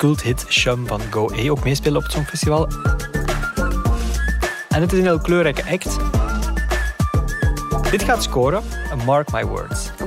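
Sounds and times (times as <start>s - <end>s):
speech: 0.0s - 3.2s, 4.8s - 6.2s, 7.9s - 10.0s
high breathy flute melody: 0.0s - 10.0s.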